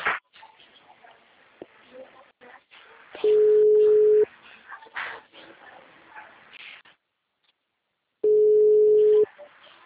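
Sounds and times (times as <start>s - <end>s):
quiet sounds: 0.0s - 9.8s
telephone ringback tones of an unanswered call: 8.2s - 9.3s.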